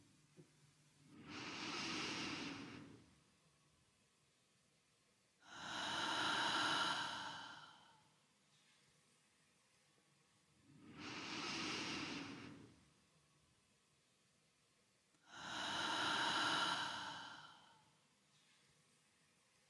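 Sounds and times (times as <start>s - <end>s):
slow deep breathing through the nose during a guided relaxation: 1.1s - 3.2s, 5.4s - 8.7s, 10.7s - 12.9s, 15.2s - 18.5s.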